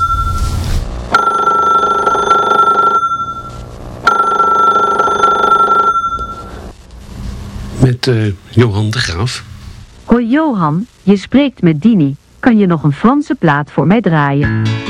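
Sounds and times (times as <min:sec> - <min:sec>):
telephone ringing with electronic trill: 0:01.1 - 0:06.6
speech: 0:08.0 - 0:09.5, 0:10.1 - 0:14.8.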